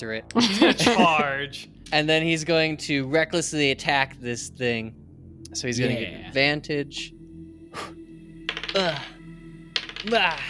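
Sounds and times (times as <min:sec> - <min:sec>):
speech: 0:00.0 - 0:07.2, 0:08.8 - 0:09.1, 0:10.0 - 0:10.4
dice rolling across a hard tabletop during a tabletop game: 0:08.5 - 0:09.0, 0:09.7 - 0:10.4.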